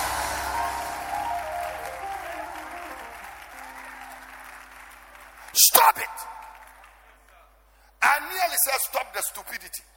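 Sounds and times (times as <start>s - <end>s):
audience at a sermon clapping and cheering: 0.0s - 7.7s
speech: 5.6s - 6.4s, 8.6s - 9.9s.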